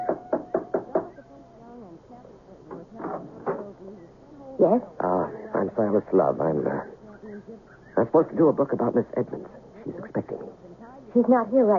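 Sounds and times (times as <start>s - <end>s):
big brass door knocker striking a house front door: 0.0s - 1.1s
speech: 4.6s - 7.0s, 8.0s - 10.3s, 11.1s - 11.7s.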